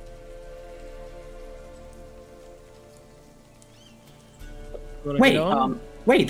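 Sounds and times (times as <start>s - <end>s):
low constant hum: 1.8s - 4.5s
rain falling on water: 1.8s - 4.5s
speech: 5.0s - 6.2s.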